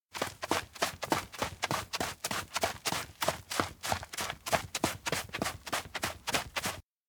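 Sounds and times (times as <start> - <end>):
running footsteps on an outdoor beach: 0.1 - 6.8.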